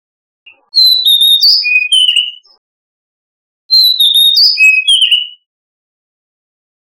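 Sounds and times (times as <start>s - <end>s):
Oriental magpie-robin whistling song: 0.5s - 2.6s, 3.7s - 5.5s.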